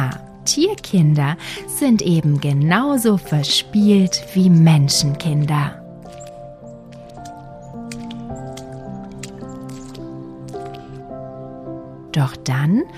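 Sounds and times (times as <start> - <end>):
soft steady music: 0.0 - 12.9
speech: 0.1 - 5.8, 12.2 - 12.9
young fox splashing and padding through puddles: 5.0 - 11.1.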